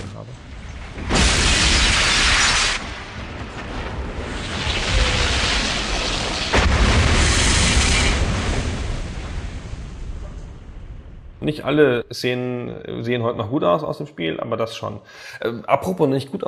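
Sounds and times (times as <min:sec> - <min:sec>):
sustained rumbling and crashing debris: 0:00.0 - 0:11.5
massive cathedral explosion in a video game cutscene: 0:00.0 - 0:11.9
speech: 0:11.5 - 0:16.4.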